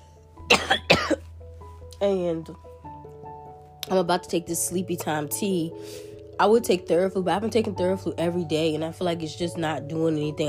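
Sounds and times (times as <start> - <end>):
forceful coughs: 0.5 - 1.3
speech: 2.0 - 2.7, 3.9 - 10.4.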